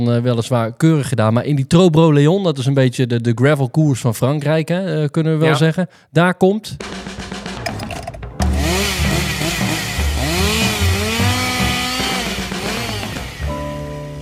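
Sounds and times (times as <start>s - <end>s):
speech: 0.0s - 6.9s
chainsaw engine revving and idling: 8.4s - 14.2s.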